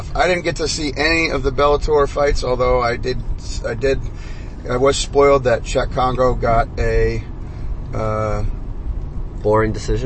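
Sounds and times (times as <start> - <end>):
low road rumble inside a moving car: 0.0 - 10.0
speech: 0.2 - 7.3, 7.9 - 8.6, 9.4 - 10.0.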